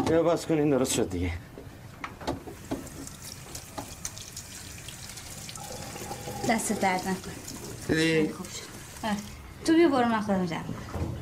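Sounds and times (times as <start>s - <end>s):
speech: 0.1s - 1.5s, 6.5s - 11.1s
water running from a tap: 2.6s - 9.4s.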